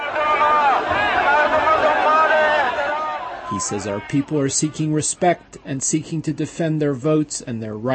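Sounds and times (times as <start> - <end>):
large protest crowd shouting slogans and cheering: 0.0 - 5.1
speech: 3.5 - 7.9.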